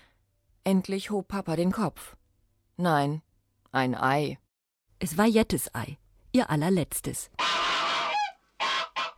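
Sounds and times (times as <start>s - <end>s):
speech: 0.7s - 2.2s, 2.8s - 4.4s, 5.0s - 7.6s
goose honking: 7.4s - 9.1s.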